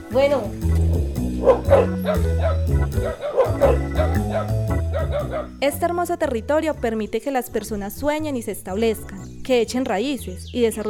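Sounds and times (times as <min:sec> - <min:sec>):
speech: 0:00.1 - 0:10.8
dogs barking on a farm: 0:01.2 - 0:05.6.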